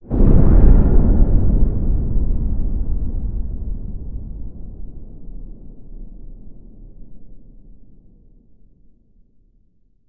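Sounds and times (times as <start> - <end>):
indoor boom: 0.0 - 7.7.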